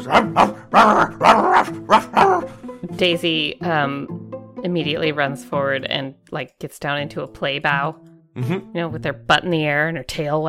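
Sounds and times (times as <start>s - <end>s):
person imitating dog barks: 0.0s - 2.5s
speech: 0.0s - 10.4s.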